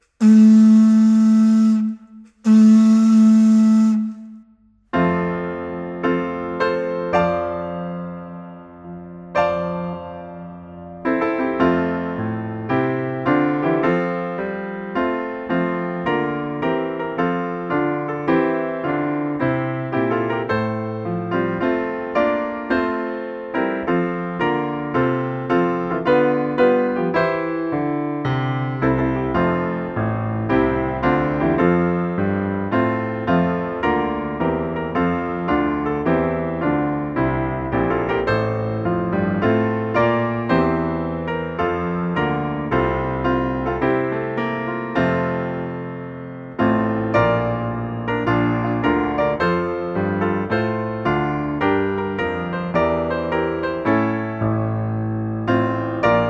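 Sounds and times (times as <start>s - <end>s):
piano accompaniment for a hymn: 0.0s - 56.2s.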